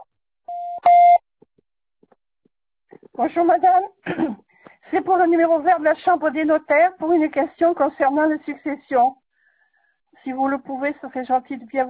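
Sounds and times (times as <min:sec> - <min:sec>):
voicemail beep from a messaging service: 0:00.0 - 0:01.2
speech: 0:03.2 - 0:09.2, 0:10.2 - 0:11.8.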